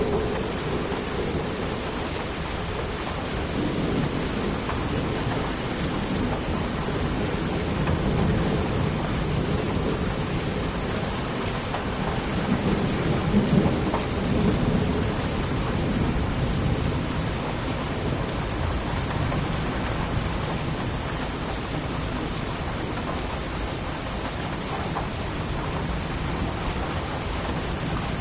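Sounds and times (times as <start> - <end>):
thunder rumbling: 0.0 - 22.4
steady rain pattering outside an open window: 0.0 - 28.1.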